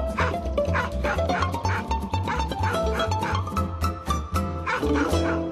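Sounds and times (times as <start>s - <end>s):
dog barking and yipping: 0.2s - 3.5s, 4.7s - 5.5s.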